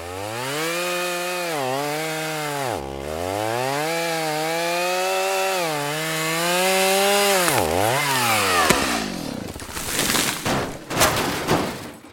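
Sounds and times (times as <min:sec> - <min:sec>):
chainsaw cutting down a tree: 0:00.0 - 0:11.3
wood cracking and crunching: 0:03.2 - 0:12.1.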